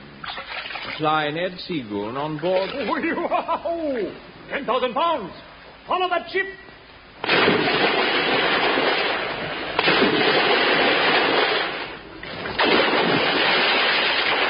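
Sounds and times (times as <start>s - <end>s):
speech: 1.0s - 6.6s
laughter: 2.8s - 4.1s
heavy splashes into water: 7.2s - 14.4s.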